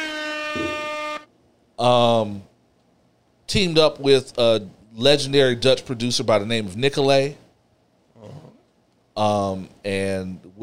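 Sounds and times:
air horn blasts: 0:00.0 - 0:01.3
speech: 0:01.8 - 0:02.5, 0:03.5 - 0:07.4, 0:09.2 - 0:10.6.

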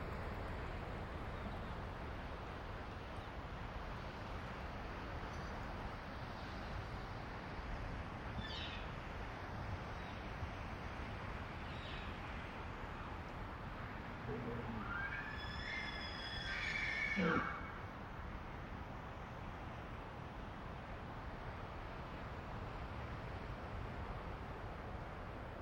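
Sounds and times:
strong mountain winds sweeping through tall pine stands: 0:00.0 - 0:25.6
elk males bugling: 0:14.2 - 0:17.8.

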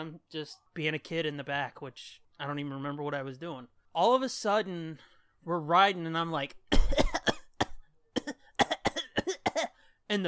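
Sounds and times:
speech: 0:00.0 - 0:06.6
person coughing and choking: 0:06.7 - 0:09.8.

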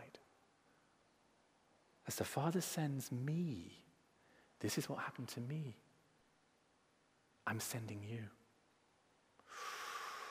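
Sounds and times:
speech: 0:02.1 - 0:03.9, 0:04.6 - 0:05.9, 0:07.5 - 0:08.4
sharp hissing intake of breath: 0:09.5 - 0:10.2.

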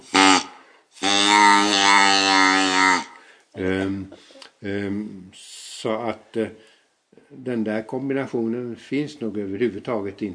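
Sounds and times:
reed duck call blown through a short plastic tube: 0:00.0 - 0:03.2
speech: 0:04.6 - 0:06.7, 0:07.3 - 0:10.3.

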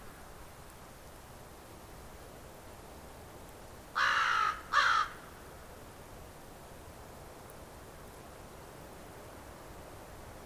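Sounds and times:
quiet hiss of air at a rural shoreline in late winter: 0:00.0 - 0:10.4
crow giving loud harsh caws: 0:04.0 - 0:05.3.

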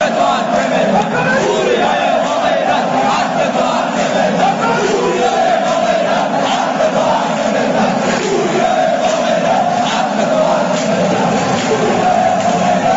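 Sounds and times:
huge football stadium crowd chanting and cheering in unison: 0:00.0 - 0:12.9.

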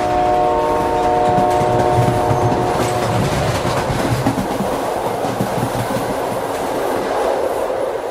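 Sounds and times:
diesel or electric train horn blaring: 0:00.0 - 0:03.7
diesel or electric train rumbling past with wheel and engine noise: 0:00.0 - 0:08.0.

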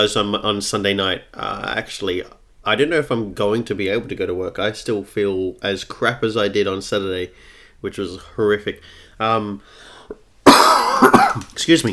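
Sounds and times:
speech: 0:00.0 - 0:11.9
harsh cough: 0:10.4 - 0:11.5.

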